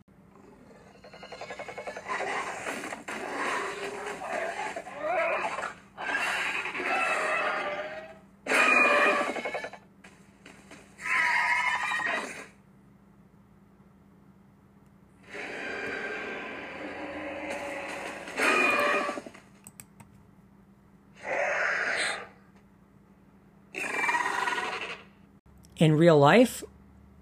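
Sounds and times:
dinosaur calls built from lion, bird, alligator, pig and horse sounds: 0.4 - 9.8, 11.0 - 12.5, 15.2 - 19.3, 21.2 - 22.4, 23.7 - 25.2
speech: 25.8 - 26.7.

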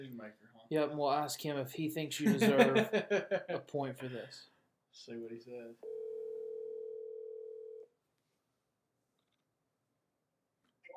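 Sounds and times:
speech: 0.0 - 5.9
laughter: 2.2 - 3.7
telephone tone of an outgoing phone call: 5.8 - 7.9.

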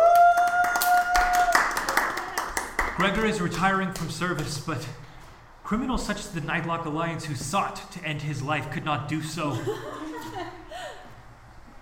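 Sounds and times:
crowd applauding: 0.0 - 3.7
speech: 3.0 - 5.0, 5.7 - 10.4
laughter: 9.4 - 11.2.

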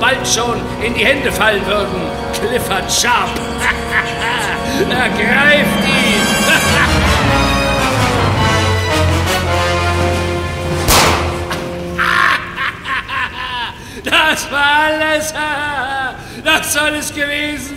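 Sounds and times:
dramatic music: 0.0 - 13.0
speech: 0.2 - 6.1, 14.0 - 17.7
laughter: 3.2 - 8.4, 12.0 - 14.5
single sharp pistol shot: 10.9 - 11.6.

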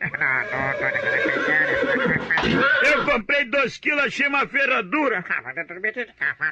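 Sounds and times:
horse neighing: 0.2 - 3.2
speech: 0.2 - 6.5.

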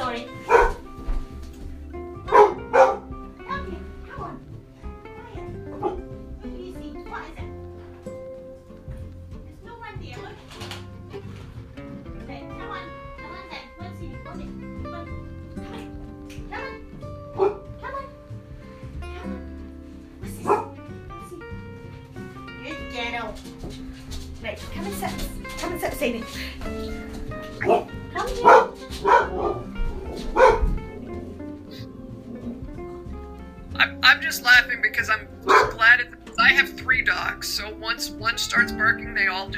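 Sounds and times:
people talking: 0.0 - 0.3, 3.5 - 4.4, 6.4 - 7.6, 9.4 - 10.6, 12.2 - 15.2, 22.6 - 23.4, 24.4 - 27.0, 28.1 - 29.0, 33.7 - 39.5
dog barking: 0.4 - 0.9, 2.2 - 3.1, 5.7 - 6.1, 16.6 - 18.2, 20.4 - 20.8, 27.6 - 31.9, 35.4 - 35.8.

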